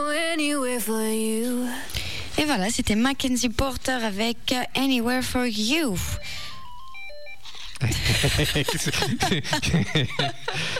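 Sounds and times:
speech: 0.4 - 1.8, 2.4 - 6.4, 7.8 - 10.7
telephone electronic ringtone melody of stepped beeping tones: 6.1 - 7.7
people chattering: 7.8 - 10.7
people laughing: 7.8 - 10.7.

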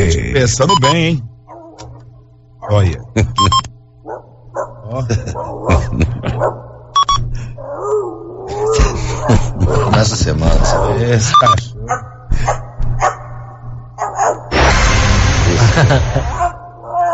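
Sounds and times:
steady low hum: 0.0 - 17.0
speech: 0.4 - 1.3, 2.6 - 4.2, 4.9 - 6.7, 7.9 - 12.6, 15.8 - 16.4
five dogs barking in overlapping bursts: 1.4 - 3.1, 4.0 - 7.0, 7.6 - 14.6
laughter: 4.8 - 6.6, 8.5 - 10.4, 15.4 - 16.6
harsh noise: 14.5 - 16.6.

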